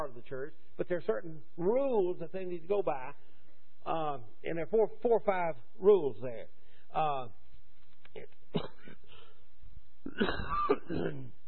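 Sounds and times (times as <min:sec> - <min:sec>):
speech: 0:00.0 - 0:07.4, 0:08.2 - 0:08.8, 0:10.0 - 0:11.4
person clearing their throat: 0:08.5 - 0:09.3, 0:10.0 - 0:11.4
person coughing and hacking: 0:08.5 - 0:09.3, 0:10.1 - 0:11.4.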